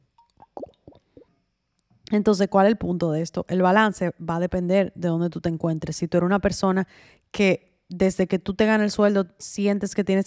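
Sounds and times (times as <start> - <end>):
sipping water with wet slurps and gulps: 0.2 - 1.2
speech: 2.1 - 10.2.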